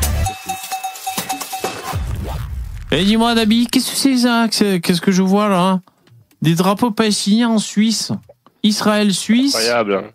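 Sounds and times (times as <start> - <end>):
bright cowbell-like percussion: 0.1 - 2.0
speech: 2.9 - 10.1.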